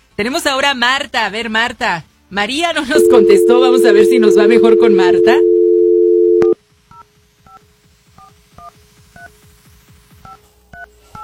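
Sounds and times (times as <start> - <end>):
speech: 0.2 - 5.5
telephone keypad dialing tones: 3.0 - 6.6.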